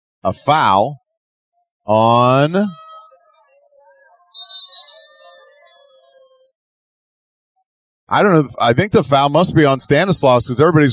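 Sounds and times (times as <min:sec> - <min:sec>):
speech: 0:00.2 - 0:01.0, 0:01.8 - 0:02.8, 0:08.1 - 0:10.9
sustained tones: 0:02.0 - 0:06.5
referee's whistle blast at a basketball game: 0:04.2 - 0:06.3.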